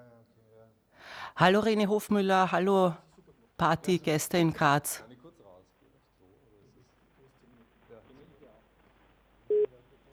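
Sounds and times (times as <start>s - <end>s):
speech: 1.4s - 3.0s, 3.6s - 5.1s
short loud electronic telephone tone on a call: 9.5s - 9.7s.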